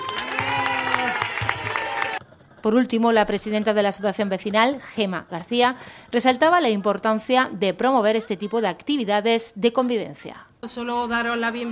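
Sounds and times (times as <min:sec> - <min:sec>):
crowd applauding at a neighbourhood gathering: 0:00.0 - 0:02.3
speech: 0:02.6 - 0:11.7.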